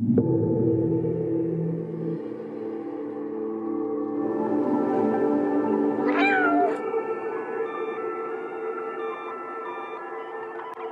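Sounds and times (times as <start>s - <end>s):
low droning musical backdrop: 0.0s - 10.8s
cat meowing in a video game teaser trailer: 6.0s - 6.9s.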